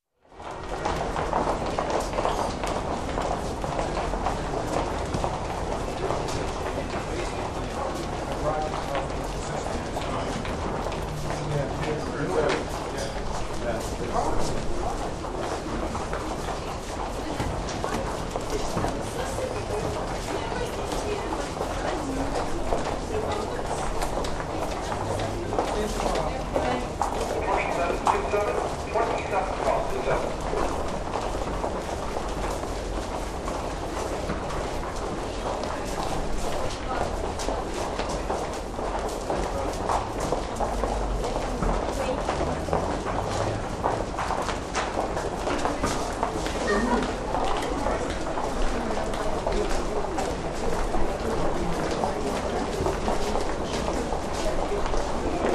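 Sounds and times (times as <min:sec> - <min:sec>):
huge crowd walking and passing by: 0:00.2 - 0:55.5.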